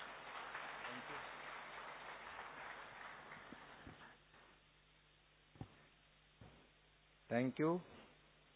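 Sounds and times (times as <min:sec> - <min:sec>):
audience clapping at a stage event: 0:00.0 - 0:04.6
speech: 0:07.3 - 0:08.0.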